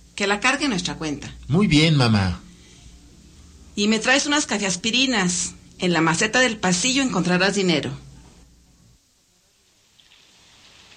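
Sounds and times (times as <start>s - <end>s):
speech: 0.2s - 2.4s, 3.8s - 8.0s
rain falling: 9.6s - 10.9s.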